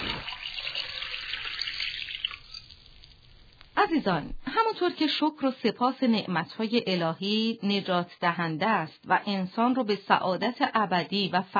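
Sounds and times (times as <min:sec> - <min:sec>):
water gushing from an open hose: 0:00.0 - 0:03.1
speech: 0:03.9 - 0:11.5.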